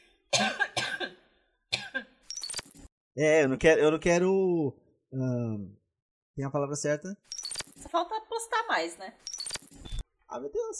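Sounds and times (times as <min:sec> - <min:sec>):
harsh coughs: 0:00.3 - 0:02.2
raspy wheezy throat-clearing: 0:00.3 - 0:02.2
speech: 0:03.2 - 0:05.8, 0:06.4 - 0:07.3, 0:08.8 - 0:09.3, 0:10.3 - 0:10.7.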